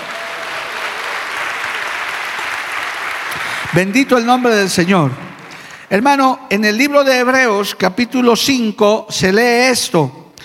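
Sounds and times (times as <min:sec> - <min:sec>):
congregation applauding: 0:00.0 - 0:06.2
speech: 0:03.7 - 0:05.2, 0:05.9 - 0:10.2.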